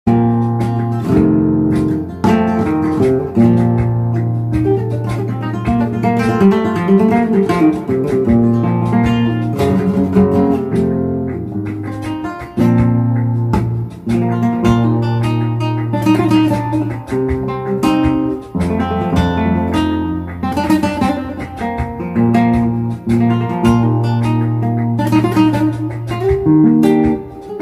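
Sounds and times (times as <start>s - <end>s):
flamenco guitar playing an alegria falseta: 0.1s - 27.6s.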